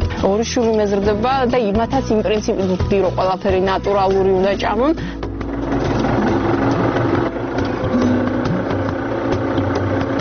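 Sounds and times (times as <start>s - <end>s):
speech: 0.2s - 5.2s
tractor engine running on a farm: 4.4s - 10.2s.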